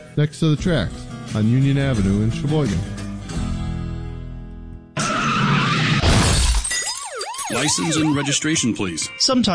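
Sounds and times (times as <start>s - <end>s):
speech: 0.2s - 2.9s, 7.5s - 9.4s
car tires screeching in a long skid: 5.0s - 6.1s
car crash with crunching impact: 5.0s - 8.2s
glass shattering and tinkling: 6.0s - 7.9s.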